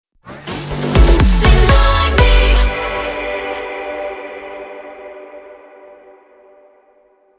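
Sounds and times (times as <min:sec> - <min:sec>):
rapid fire jingle in F: 0:00.3 - 0:04.0.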